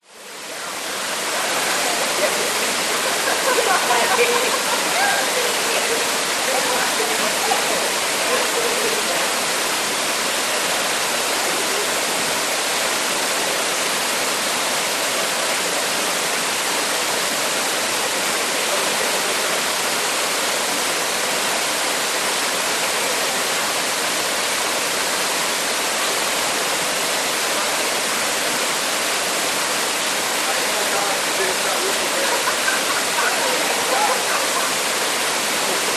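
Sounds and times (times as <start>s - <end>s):
waterfall into a lagoon in a rainforest: 0.0s - 35.9s
people chatting: 0.4s - 9.4s, 11.4s - 12.3s, 18.0s - 19.8s, 30.4s - 35.9s
people laughing: 1.4s - 9.1s, 31.8s - 35.9s.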